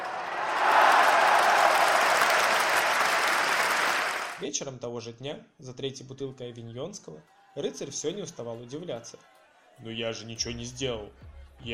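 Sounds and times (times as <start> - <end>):
many hands clapping: 0.0 - 4.4
speech: 4.4 - 11.7.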